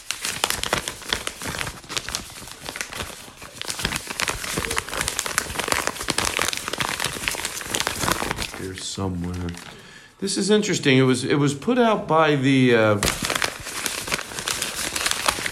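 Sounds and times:
paper crinkling and rustling while being shuffled: 0:00.0 - 0:09.8, 0:13.0 - 0:15.5
speech: 0:09.0 - 0:13.3.

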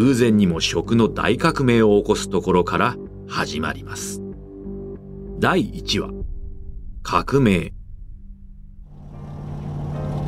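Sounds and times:
speech: 0:00.0 - 0:04.2, 0:05.4 - 0:06.3, 0:07.0 - 0:07.8
car engine rumbling as the vehicle speeds up: 0:07.8 - 0:10.2
broadband road noise from a car driving along a street: 0:08.9 - 0:10.2.

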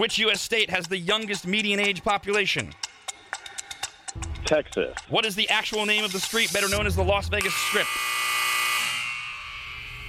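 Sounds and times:
speech: 0:00.0 - 0:02.9, 0:04.5 - 0:08.2
harsh electronic buzzer ending a timed trivia quiz round: 0:05.8 - 0:10.0.

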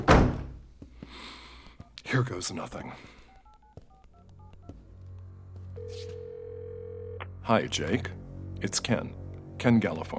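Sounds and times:
door shutting with solid thunk: 0:00.0 - 0:00.6
speech: 0:02.1 - 0:03.2, 0:07.5 - 0:10.1.

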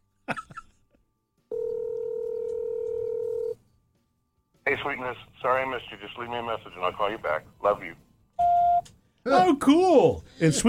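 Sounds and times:
telephone call ringing tone: 0:01.5 - 0:03.6
speech: 0:04.8 - 0:08.1, 0:09.2 - 0:10.6.

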